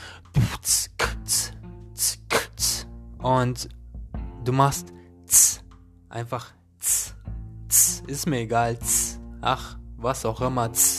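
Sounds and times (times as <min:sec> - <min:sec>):
beatboxing a basic beat pattern: 0:00.3 - 0:02.9, 0:05.3 - 0:05.6, 0:06.8 - 0:08.1
speech: 0:03.2 - 0:03.8, 0:04.4 - 0:07.0, 0:08.1 - 0:10.9.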